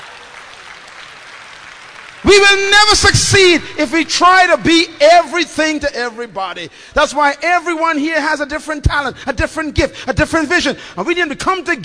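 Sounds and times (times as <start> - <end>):
crowd clapping: 0.0 - 4.0
speech: 2.2 - 11.8.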